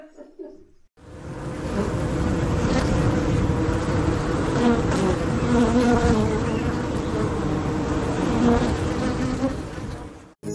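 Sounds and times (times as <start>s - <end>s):
honeybees buzzing around beehives outdoors: 1.1s - 10.4s.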